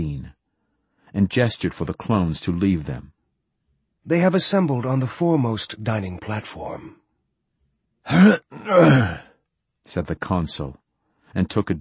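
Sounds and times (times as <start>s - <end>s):
speech: 1.1s - 3.2s, 4.0s - 7.0s, 8.0s - 9.2s, 9.8s - 11.7s
man clearing his throat: 8.1s - 9.3s.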